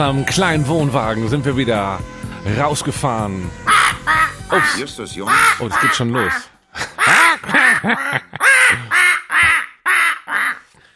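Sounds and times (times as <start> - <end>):
speech: 0.0 - 9.0
parrot squawking: 3.6 - 10.7.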